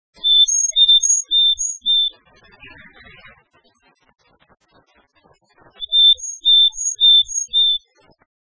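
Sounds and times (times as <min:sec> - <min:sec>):
willow tit: 0:00.2 - 0:02.1, 0:05.8 - 0:07.8.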